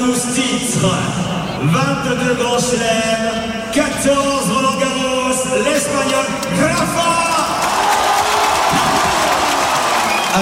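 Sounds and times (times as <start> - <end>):
speech: 0.1 - 7.4
tennis stadium crowd of nearly 6000 cheering and applauding in a standing ovation: 7.3 - 10.4.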